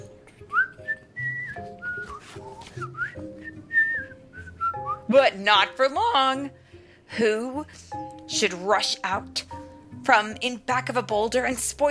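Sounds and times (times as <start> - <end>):
person whistling a jaunty marching tune: 0.5 - 5.1
speech: 5.1 - 9.4, 10.1 - 11.8.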